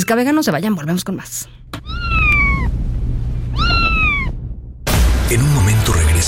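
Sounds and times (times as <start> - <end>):
speech: 0.0 - 1.6, 5.3 - 6.2
low rumbling hum: 0.0 - 5.9
cat meowing: 1.8 - 2.7, 3.5 - 4.4.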